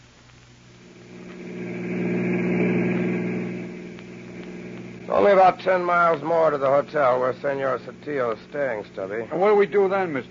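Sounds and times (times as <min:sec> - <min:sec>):
car engine droning: 0:00.8 - 0:08.9
speech: 0:05.2 - 0:10.2.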